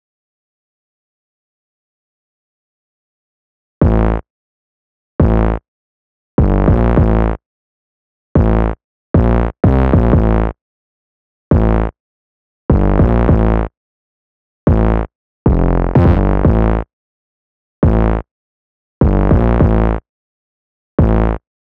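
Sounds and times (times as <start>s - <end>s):
silly isolated bass line: 3.8s - 4.2s, 5.2s - 5.6s, 6.4s - 7.4s, 8.4s - 10.6s, 11.5s - 11.9s, 12.7s - 13.7s, 14.7s - 16.9s, 17.8s - 18.2s, 19.0s - 20.0s, 21.0s - 21.4s.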